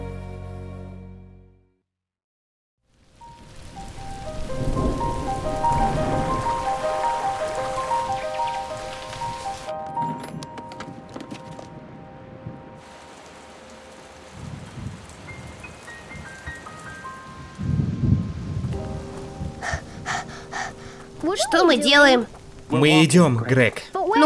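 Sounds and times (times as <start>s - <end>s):
steady rain pouring down: 2.9s - 9.8s, 12.8s - 24.2s
speech: 21.5s - 24.2s.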